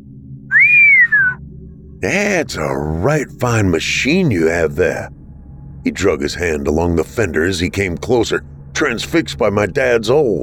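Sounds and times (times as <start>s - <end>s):
long low whistle from a boy by a car's front fender: 0.5s - 1.4s
speech: 2.0s - 5.2s, 5.8s - 10.4s.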